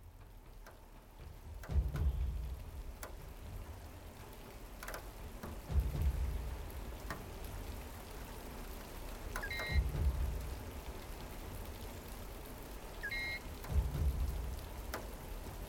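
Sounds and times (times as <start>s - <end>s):
low rumbling swells: 0.0s - 12.7s, 13.4s - 15.6s
heavy monsoon rain pouring: 0.0s - 15.6s
brief electronic chirps: 9.4s - 9.8s, 13.0s - 13.4s.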